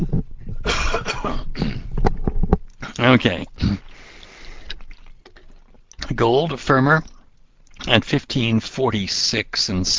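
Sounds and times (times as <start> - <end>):
person coughing after taking off a headset: 0.6 - 1.9
speech: 1.2 - 1.5, 3.0 - 3.8, 6.2 - 7.2, 7.9 - 9.9.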